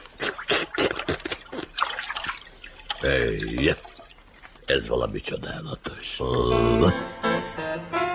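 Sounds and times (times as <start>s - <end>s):
object dipping into water, dripping and trickling splashes: 0.0s - 5.2s
speech: 3.0s - 4.0s, 4.7s - 7.5s.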